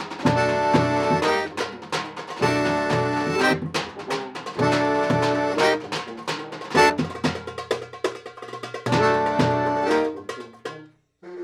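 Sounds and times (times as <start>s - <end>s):
accordion: 0.3s - 6.1s, 6.7s - 7.0s, 8.9s - 10.3s.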